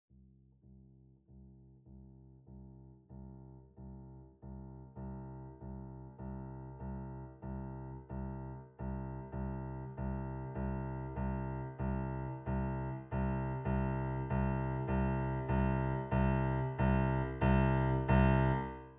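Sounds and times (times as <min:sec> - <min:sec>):
Fazioli piano playing: 0:06.2 - 0:18.9.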